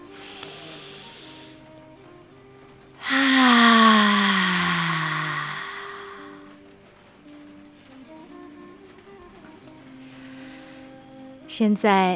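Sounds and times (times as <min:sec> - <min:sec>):
breath noise: 0:00.0 - 0:01.8, 0:03.0 - 0:06.7, 0:09.9 - 0:11.0
breathy voiced hum on a deep breath out during a breathing exercise: 0:00.0 - 0:11.5.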